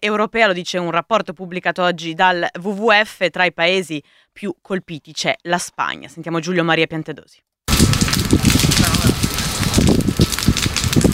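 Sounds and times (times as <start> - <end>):
speech: 0.0 - 8.5
rushing wind-like noise: 7.7 - 11.1
wildfire burning: 7.7 - 11.1.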